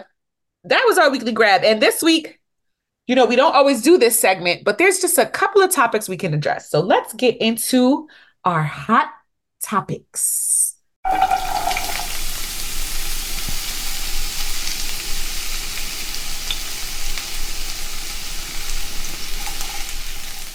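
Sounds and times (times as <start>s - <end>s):
speech: 0.0s - 2.4s, 3.1s - 11.8s
food frying in a hot pan: 11.0s - 20.5s.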